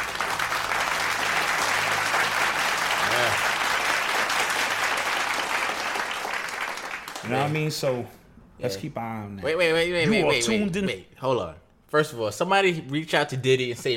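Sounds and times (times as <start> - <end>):
crowd applauding: 0.0 - 7.6
speech: 7.3 - 13.9.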